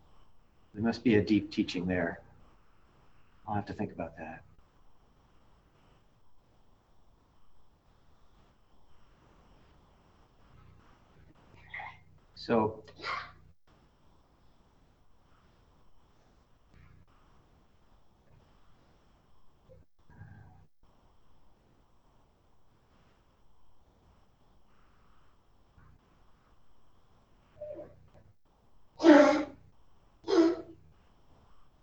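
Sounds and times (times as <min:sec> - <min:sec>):
speech: 0:00.7 - 0:02.2, 0:03.5 - 0:04.5, 0:12.4 - 0:13.2
small dog coughing: 0:13.0 - 0:13.4, 0:27.6 - 0:28.0, 0:29.0 - 0:29.6, 0:30.2 - 0:30.8
small dog snorting: 0:29.0 - 0:29.6, 0:30.3 - 0:30.7.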